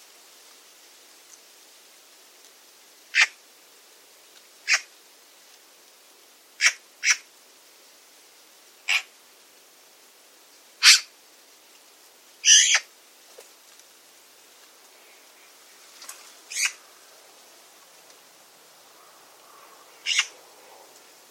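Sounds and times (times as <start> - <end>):
faint background hiss: 0.0 - 21.3
bird giving sharp high calls: 4.7 - 4.9, 6.6 - 7.2, 8.9 - 9.1, 10.8 - 11.1, 12.4 - 12.9, 16.5 - 16.8, 20.0 - 20.3.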